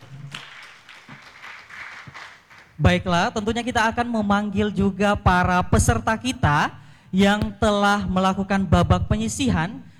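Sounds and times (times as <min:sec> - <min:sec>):
audience applause for a jury panel at a competition semifinal: 0:00.0 - 0:03.4
speech: 0:02.8 - 0:09.9.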